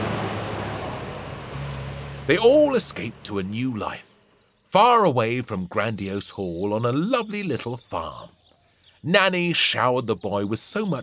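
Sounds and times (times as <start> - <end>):
Rolls-Royce car engine roaring as the car races away: 0.0 - 4.4
road noise: 0.0 - 11.0
speech: 2.3 - 4.1, 4.7 - 8.4, 9.0 - 11.0.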